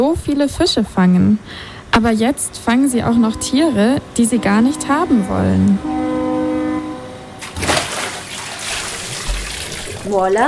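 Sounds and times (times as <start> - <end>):
speech: 0.0 - 6.0, 10.1 - 10.4
steady droning tone: 1.8 - 7.6.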